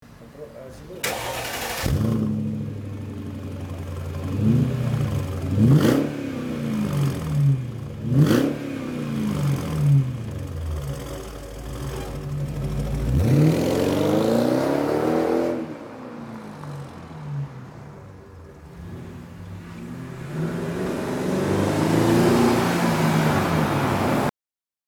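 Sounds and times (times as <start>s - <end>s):
Mercedes R500 car: 0.0s - 24.3s.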